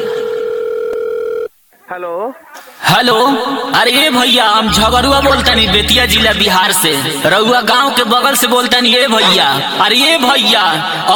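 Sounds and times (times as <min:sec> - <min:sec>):
telephone dial tone as a call is placed: 0:00.0 - 0:01.5
speech: 0:02.0 - 0:11.1.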